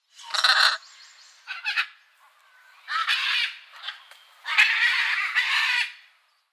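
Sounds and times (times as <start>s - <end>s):
blue-and-yellow macaw Ara ararauna calling: 0.2s - 6.0s.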